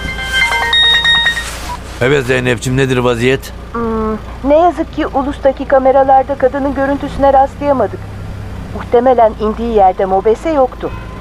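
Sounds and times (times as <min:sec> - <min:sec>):
mobile phone ringtone in a car: 0:00.0 - 0:01.7
speech: 0:02.0 - 0:08.1, 0:08.7 - 0:11.1.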